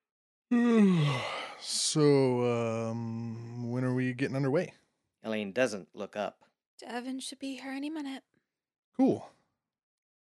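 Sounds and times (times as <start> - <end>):
speech: 0.5 - 3.2, 4.1 - 8.4, 9.0 - 9.4
man yawning: 0.5 - 3.5
breathy inhale: 0.8 - 1.6.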